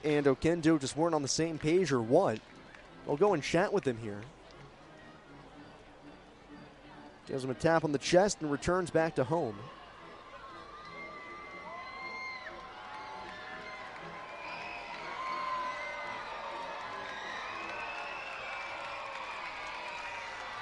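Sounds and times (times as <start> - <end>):
speech: 0.0 - 4.4, 7.3 - 9.8
large ballpark crowd cheering and shouting in the ninth inning: 9.6 - 20.5
scattered whoops and voices from ballpark crowd: 10.7 - 18.9.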